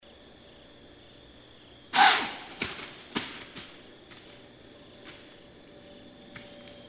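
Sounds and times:
white-tailed deer giving a loud forceful breathy snort: 0:02.0 - 0:02.6.

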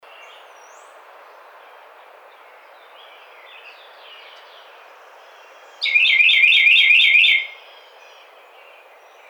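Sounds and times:
Carolina wren singing: 0:02.8 - 0:09.2
speech: 0:05.8 - 0:06.1.

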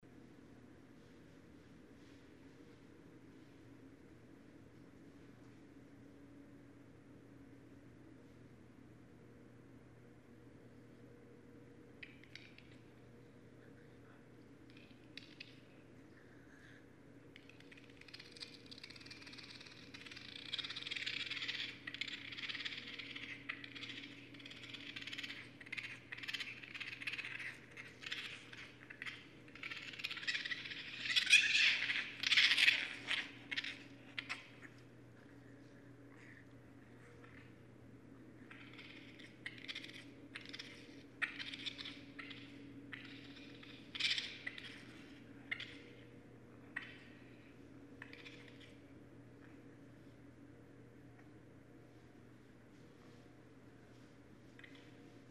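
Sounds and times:
Northern Raccoon Procyon lotor in North America: 0:11.8 - 0:51.4, 0:53.9 - 0:55.2.

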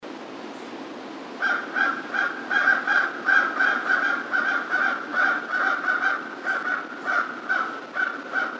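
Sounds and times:
American crow cawing: 0:01.4 - 0:08.5.

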